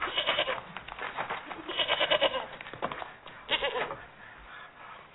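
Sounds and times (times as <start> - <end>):
goat bleating: 0.1 - 0.6, 1.6 - 2.6, 3.5 - 4.0.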